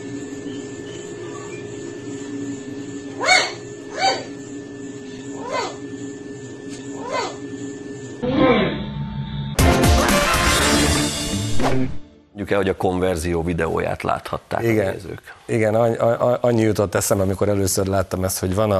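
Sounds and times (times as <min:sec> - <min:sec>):
steady hum: 0:00.0 - 0:18.7
dog barking in a played video clip: 0:03.2 - 0:04.3
speech: 0:12.5 - 0:18.7.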